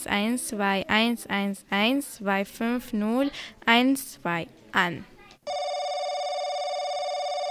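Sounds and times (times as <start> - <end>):
speech: 0.0 - 5.1
telephone ringing with an incoming call: 5.5 - 7.5.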